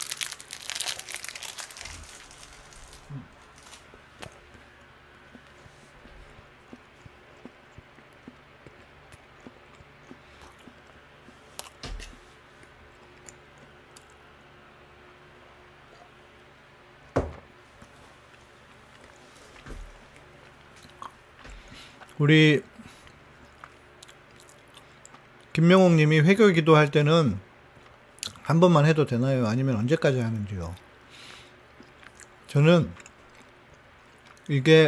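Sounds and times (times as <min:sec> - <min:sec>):
wrapper crinkling: 0:00.0 - 0:03.9
person chewing: 0:00.0 - 0:14.2, 0:22.9 - 0:25.5, 0:31.7 - 0:34.5
speech: 0:03.1 - 0:03.4, 0:22.2 - 0:22.7, 0:25.6 - 0:27.5, 0:28.5 - 0:30.8, 0:32.5 - 0:33.0, 0:34.5 - 0:34.8.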